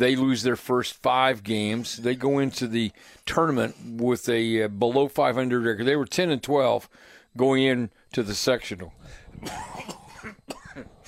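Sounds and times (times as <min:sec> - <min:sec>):
speech: 0:00.0 - 0:10.9
person coughing: 0:09.4 - 0:11.0
throat clearing: 0:09.4 - 0:11.0.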